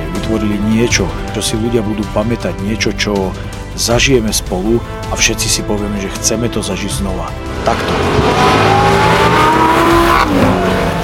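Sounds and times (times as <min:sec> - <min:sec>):
speech: 0:00.3 - 0:08.8, 0:09.6 - 0:10.9
loud roaring car engines revving: 0:07.4 - 0:11.0.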